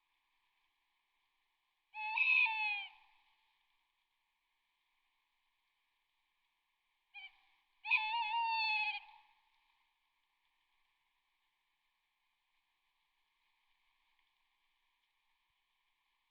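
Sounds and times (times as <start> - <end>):
tawny owl hooting: 2.0 - 3.0, 7.2 - 9.2.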